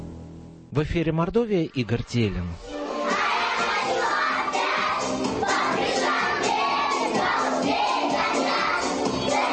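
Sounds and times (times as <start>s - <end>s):
speech: 0.8s - 2.7s
about 30 kindergarten children singing loudly together during a music and dance lesson in Mordovia: 2.8s - 9.5s.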